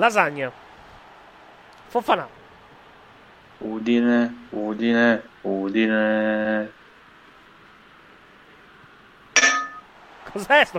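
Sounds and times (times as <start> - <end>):
speech: 0.0 - 0.6, 1.9 - 2.4, 3.6 - 6.8, 10.3 - 10.7
faint steady hum: 0.0 - 10.7
small bell struck once: 9.4 - 9.9.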